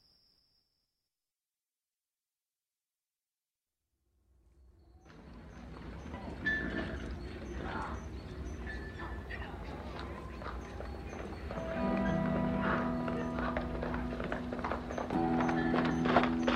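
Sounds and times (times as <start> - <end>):
horse hooves clip-clopping in town: 5.1 - 16.5
murmuring voices: 5.7 - 16.5.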